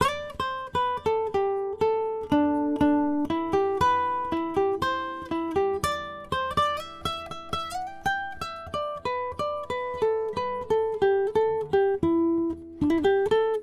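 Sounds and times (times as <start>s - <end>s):
nylon guitar: 0.0s - 13.6s.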